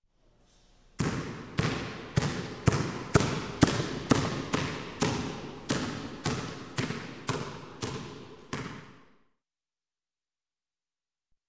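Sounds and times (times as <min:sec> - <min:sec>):
basketball dribbling: 0:01.0 - 0:09.1.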